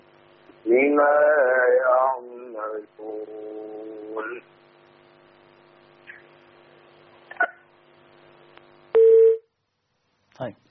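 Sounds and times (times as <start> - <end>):
speech: 0.6 - 4.6, 10.4 - 10.6
telephone tone after a disconnected call: 9.0 - 9.4.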